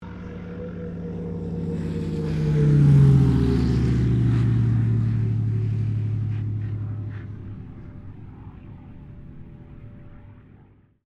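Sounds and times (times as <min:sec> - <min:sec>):
CA-13 Boomerang aircraft landing: 0:00.0 - 0:10.7.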